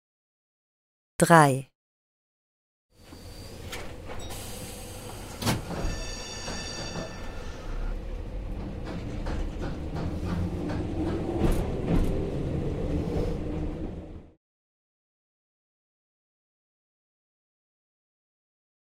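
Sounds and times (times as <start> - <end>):
speech: 1.2 - 1.7
tram wheels squealing on rails: 3.0 - 13.8
tram rumbling along: 3.0 - 14.4.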